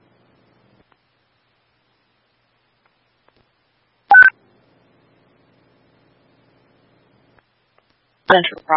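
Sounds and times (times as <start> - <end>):
electronic dispatch radio paging tones for a traffic incident: 4.1 - 4.3
speech: 8.3 - 8.7.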